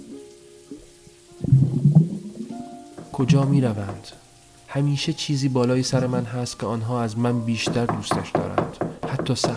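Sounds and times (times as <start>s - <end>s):
water bubbling: 1.3s - 4.3s
speech: 3.2s - 8.6s, 9.2s - 9.5s.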